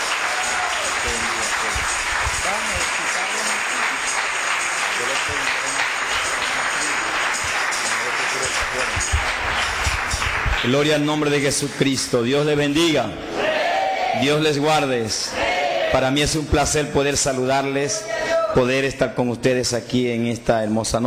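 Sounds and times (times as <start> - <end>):
audience applauding: 0.0 - 11.9
speech: 10.6 - 13.4, 14.2 - 21.0.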